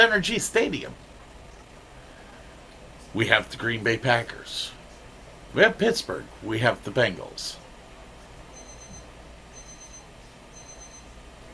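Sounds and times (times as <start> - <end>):
speech: 0.0 - 1.1, 3.1 - 4.8, 5.5 - 7.6
low hum: 0.0 - 11.5
timer alarm beeping: 8.6 - 11.5.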